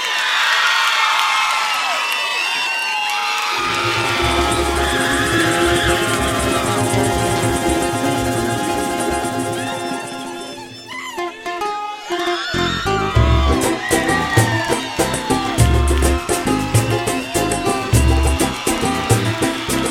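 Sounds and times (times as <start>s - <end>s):
crowd of women screaming and cheering: 0.0s - 19.8s
band with heavy bass: 3.6s - 10.2s, 12.7s - 19.8s.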